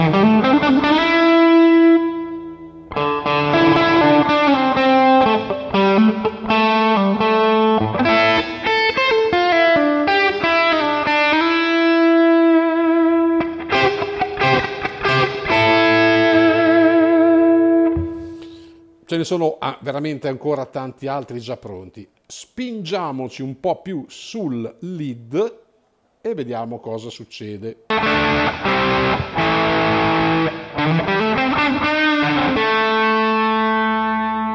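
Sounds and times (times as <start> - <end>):
electric guitar melodic phrase with slightly driven tone and roomy reverb: 0.0 - 19.0, 27.9 - 34.5
speech: 19.2 - 25.6, 26.2 - 29.8, 30.8 - 31.2.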